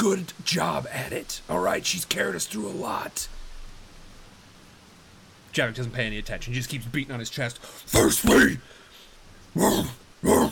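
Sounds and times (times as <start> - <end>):
speech: 0.0 - 3.4, 5.5 - 8.8, 9.5 - 10.4
man growling like a dog: 9.6 - 10.4.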